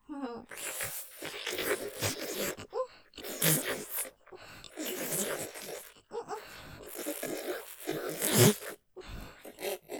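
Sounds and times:
vacuum fellatio sucking sounds: 0.5s - 2.6s, 3.2s - 6.0s, 6.8s - 8.8s.

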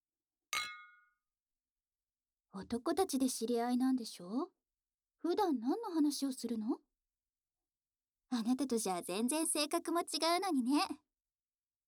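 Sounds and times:
glasses clinking in a toast: 0.6s - 1.1s
speech: 2.6s - 4.6s, 5.2s - 6.8s, 8.3s - 11.0s.

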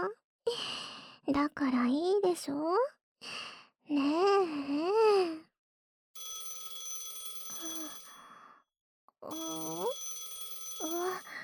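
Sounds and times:
speech: 1.3s - 5.5s, 9.2s - 10.0s
phone ringing with a warbling electronic tone: 6.2s - 8.2s, 9.3s - 11.4s.

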